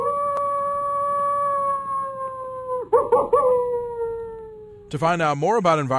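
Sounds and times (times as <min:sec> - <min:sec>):
coyote howling: 0:00.0 - 0:04.9
speech: 0:04.9 - 0:05.9.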